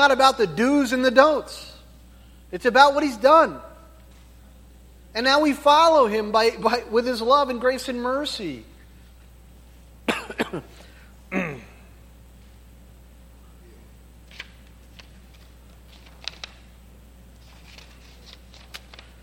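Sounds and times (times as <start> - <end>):
speech: 0.0 - 1.7, 2.5 - 3.7, 5.2 - 8.7, 10.1 - 10.7
person coughing: 10.1 - 11.9.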